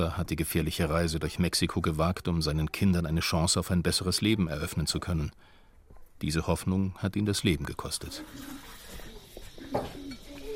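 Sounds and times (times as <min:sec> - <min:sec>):
speech: 0:00.0 - 0:05.5, 0:06.2 - 0:08.7
woman pouring drinking water into glasses for mourners: 0:08.1 - 0:10.3.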